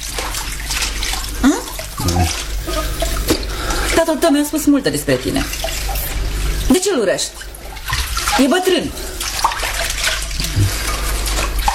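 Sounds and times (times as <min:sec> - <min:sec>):
tap water running while washing dishes: 0:00.0 - 0:11.7
speech: 0:04.0 - 0:05.8, 0:06.8 - 0:07.5, 0:08.4 - 0:09.1.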